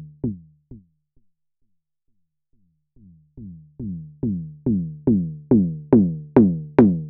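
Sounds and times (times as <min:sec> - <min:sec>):
drum machine synthesizer low-pass filter sweep: 0:02.6 - 0:07.0.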